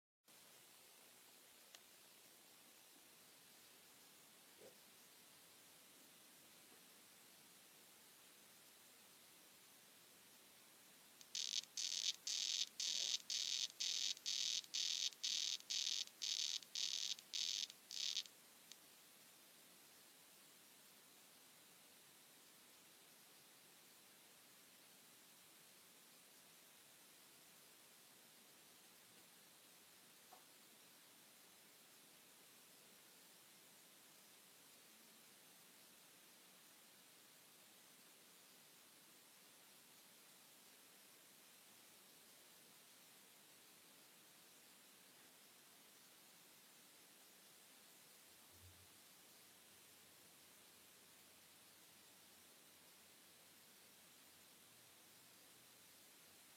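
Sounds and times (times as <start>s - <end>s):
Ranitomeya reticulata frog calling: 11.2s - 18.3s.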